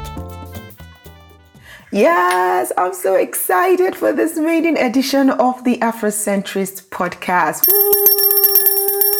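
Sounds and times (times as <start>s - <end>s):
speech: 1.9s - 8.3s
bell ringing: 7.7s - 9.1s.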